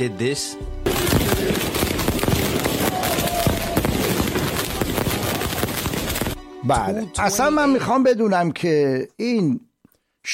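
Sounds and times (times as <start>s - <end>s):
speech: 0.0s - 2.4s, 6.6s - 9.7s
fireworks and firecrackers exploding: 0.8s - 6.4s.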